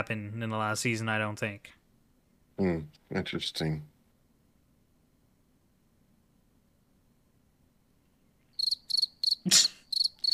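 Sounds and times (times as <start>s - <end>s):
speech: 0.0s - 1.8s, 2.6s - 3.9s, 9.5s - 9.7s
crickets chirping: 8.6s - 10.3s.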